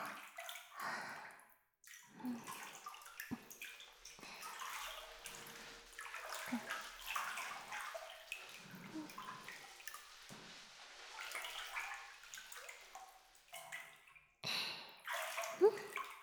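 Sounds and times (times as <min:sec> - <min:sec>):
water splashing and sloshing in a bath: 0:00.0 - 0:16.2
soft rubbing while washing an armpit: 0:08.4 - 0:12.6.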